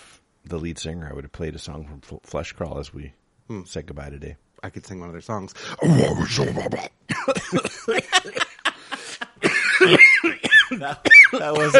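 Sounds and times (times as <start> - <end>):
speech: 0.5 - 8.6, 9.8 - 10.0, 10.8 - 11.7
harsh coughs into a microphone: 6.3 - 8.4, 9.4 - 11.7
laughter: 7.2 - 11.7.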